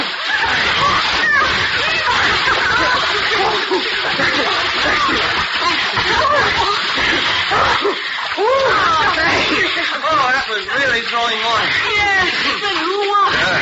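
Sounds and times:
laughter: 0.0s - 13.5s
people talking and calling: 0.0s - 13.5s
water splashing as swimmers race across a pool: 0.0s - 13.5s.

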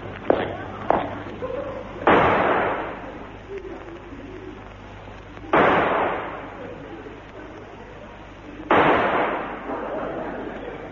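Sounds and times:
low steady hum: 0.0s - 10.9s
laughter: 0.5s - 2.1s, 3.0s - 4.8s, 6.4s - 8.7s, 9.5s - 10.9s
pistol shots fired in a duel: 2.0s - 3.0s, 5.5s - 6.5s, 8.7s - 9.7s.

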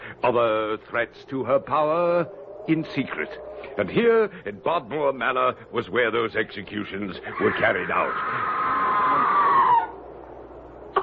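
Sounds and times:
speech: 0.2s - 8.8s
long shrill distant scream: 7.2s - 10.1s.

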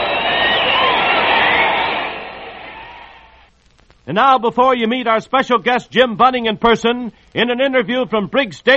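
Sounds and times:
big baseball stadium crowd cheering: 0.0s - 3.5s
speech: 4.1s - 8.7s.

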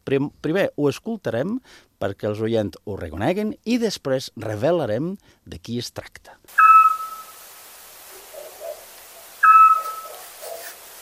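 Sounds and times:
speech: 0.1s - 6.7s
faint chirping: 6.5s - 10.8s
scops owl whistled hoots: 6.6s - 7.4s, 9.4s - 10.8s.

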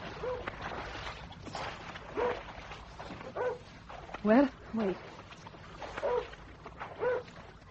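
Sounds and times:
dog barking with short yelping barks: 0.1s - 0.5s, 2.1s - 2.5s, 3.2s - 3.7s, 5.8s - 7.3s
speech: 4.2s - 5.1s.

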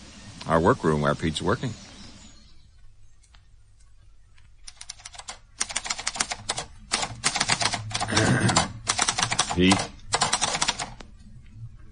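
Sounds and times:
low hum: 0.0s - 11.9s
speech: 0.5s - 1.8s
mechanical typewriter keystrokes as a man types upstairs in a workroom: 4.7s - 11.0s.

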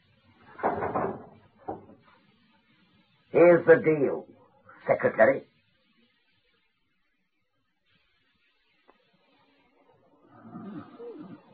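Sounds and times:
door being pushed shut: 0.6s - 1.9s
speech: 3.4s - 5.5s.

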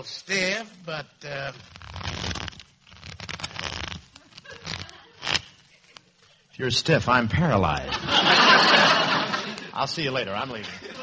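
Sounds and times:
speech: 0.0s - 2.3s, 6.6s - 9.0s, 9.8s - 11.0s
deck of playing cards shuffled for a card game: 0.3s - 6.5s
laughter: 4.2s - 6.6s, 7.8s - 11.0s.

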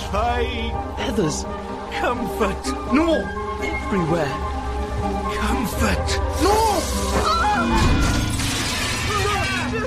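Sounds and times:
speech: 0.1s - 8.1s
wired skylight glass shattering as a fallen branch smashes it: 8.0s - 9.7s.

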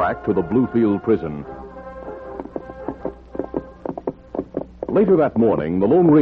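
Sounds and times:
speech: 0.0s - 1.6s, 4.9s - 6.2s
horses' hooves clip-clopping as riders ride east: 0.5s - 6.2s.

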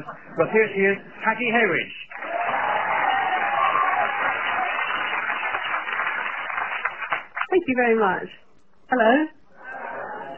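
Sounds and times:
speech: 0.0s - 2.1s, 7.6s - 9.4s
large comedy club audience clapping and cheering: 2.1s - 7.6s
whoops from comedy club audience: 2.2s - 5.1s.

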